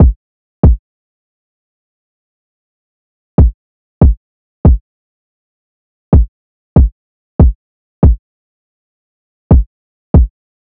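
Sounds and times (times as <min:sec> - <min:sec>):
kick drum: 0:00.0 - 0:00.8, 0:03.4 - 0:04.8, 0:06.1 - 0:08.2, 0:09.5 - 0:10.3
drill drum loop: 0:06.2 - 0:08.2.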